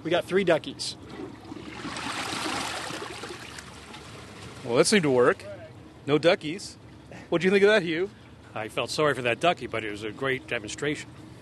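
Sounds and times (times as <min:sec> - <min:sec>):
speech: 0:00.0 - 0:01.2, 0:04.6 - 0:11.2
low-flow toilet half flush: 0:01.1 - 0:03.9.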